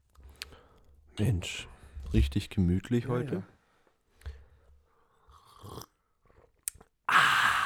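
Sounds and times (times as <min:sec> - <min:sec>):
speech: 0:01.2 - 0:03.5
soft mouth and sipping noises: 0:05.1 - 0:07.0.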